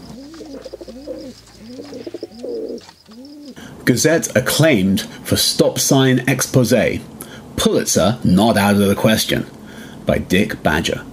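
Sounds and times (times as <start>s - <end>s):
pigeons cooing: 0.0s - 3.6s
speech: 1.1s - 2.2s, 3.9s - 11.1s.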